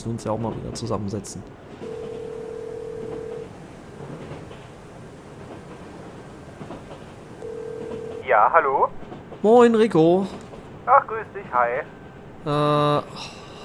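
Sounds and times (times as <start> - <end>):
speech: 0.0 - 1.9, 8.3 - 13.4
constant rumbling train noise: 0.0 - 13.6
phone ringback tone of an outgoing call placed from a train: 1.8 - 3.5, 7.4 - 8.3.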